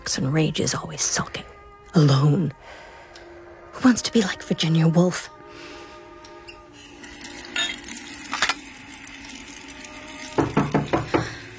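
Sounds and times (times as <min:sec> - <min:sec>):
speech: 0:00.1 - 0:02.8, 0:03.8 - 0:05.7
knocking at a front door: 0:10.4 - 0:11.4.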